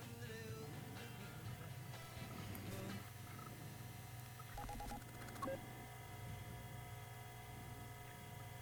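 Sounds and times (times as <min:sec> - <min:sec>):
steady electronic hum: 0:00.2 - 0:08.6
faint crackling phone line noise: 0:01.6 - 0:08.6
phone keypad dialing beeps: 0:04.5 - 0:05.6.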